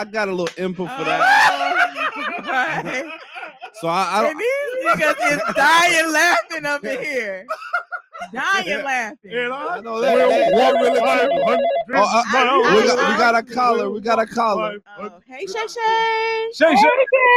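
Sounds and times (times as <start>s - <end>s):
speech: 0.0s - 1.6s, 2.2s - 3.2s, 3.8s - 7.6s, 8.3s - 17.3s
lively voices and chatter: 0.0s - 7.4s, 8.1s - 17.3s
laughter: 0.7s - 8.8s, 10.0s - 14.6s
phone ringtone signalling an incoming call: 10.0s - 13.2s.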